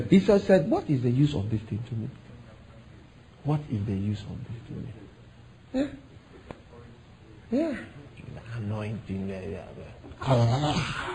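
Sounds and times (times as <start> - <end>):
speech: 0.0 - 2.2, 3.4 - 5.0, 5.7 - 6.1, 7.5 - 11.1
faint hum: 0.0 - 11.1
person yawning: 10.2 - 11.1.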